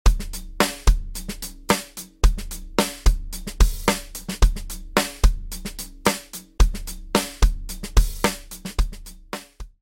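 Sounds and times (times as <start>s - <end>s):
Worldmax drum played with sticks: 0.1s - 9.8s.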